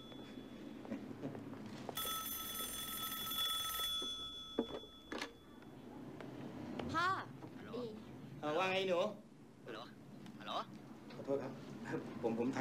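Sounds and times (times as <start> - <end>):
telephone giving one electronic ring: 0.0 - 5.7
low noise: 0.0 - 12.5
speech: 8.4 - 9.2, 10.5 - 12.5.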